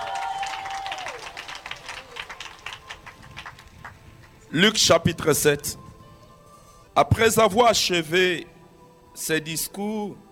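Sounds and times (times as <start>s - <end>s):
congregation applauding during a church service: 0.0s - 4.5s
speech: 4.5s - 5.8s, 7.0s - 8.5s, 9.2s - 10.2s.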